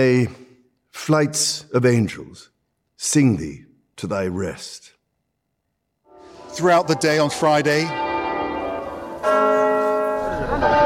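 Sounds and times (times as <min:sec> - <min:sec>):
speech: 0:00.0 - 0:00.4, 0:01.0 - 0:05.0, 0:06.6 - 0:08.1
church bells tolling in mourning: 0:06.1 - 0:10.8.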